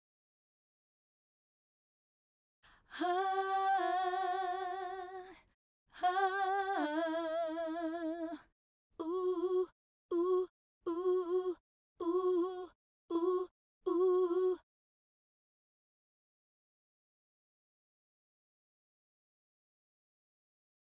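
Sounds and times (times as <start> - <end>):
female vocal harmony in G major and D major: 2.8 - 14.6.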